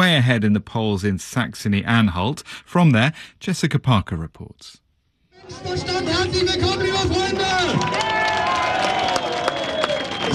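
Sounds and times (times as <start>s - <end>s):
speech: 0.1s - 4.8s, 5.4s - 8.3s
large outdoor crowd cheering at a political rally: 5.4s - 10.3s
scattered clapping: 6.2s - 10.3s
shrill whistles: 7.9s - 10.3s.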